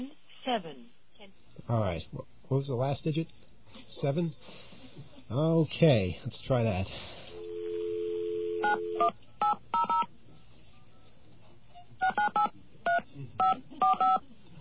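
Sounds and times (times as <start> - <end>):
speech: 0.0 - 7.2, 8.6 - 10.1, 12.0 - 14.4
telephone dial tone: 7.4 - 9.1.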